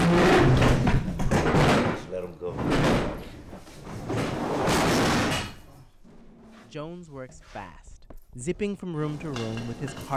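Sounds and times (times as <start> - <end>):
tables being stacked by a man scraping and clattering: 0.0 - 5.6, 9.0 - 10.1
speech: 6.8 - 10.1.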